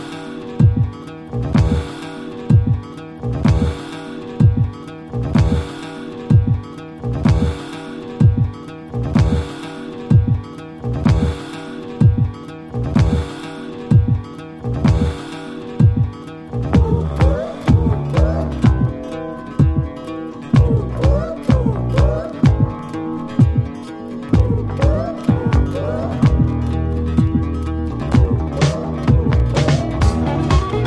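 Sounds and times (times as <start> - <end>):
heartbeat: 0.6 - 1.9, 2.5 - 3.8, 4.4 - 5.7, 6.3 - 7.6, 8.2 - 9.5, 10.1 - 11.4, 12.0 - 13.3, 13.9 - 15.2, 15.8 - 27.6, 28.1 - 30.7.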